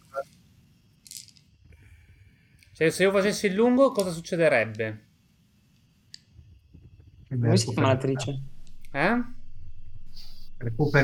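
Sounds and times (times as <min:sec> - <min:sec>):
seven dice rattling and clattering as they are rolled: 0:01.0 - 0:01.5
speech: 0:02.8 - 0:05.1, 0:07.4 - 0:09.4, 0:10.6 - 0:11.0.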